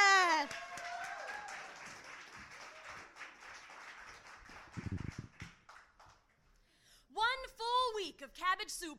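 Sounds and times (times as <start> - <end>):
poetry slam audience clapping for a poet: 0.2 - 6.5
speech: 8.3 - 8.9.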